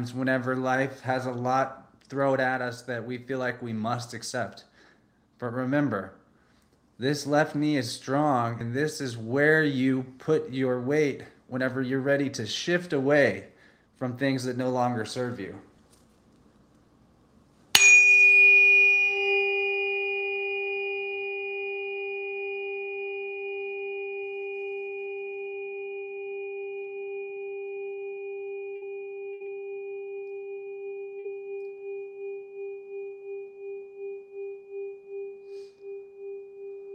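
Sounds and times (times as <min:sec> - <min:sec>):
speech: 0:00.0 - 0:04.7, 0:05.4 - 0:06.2, 0:07.0 - 0:15.7
struck healing tone ringing: 0:17.7 - 0:36.9.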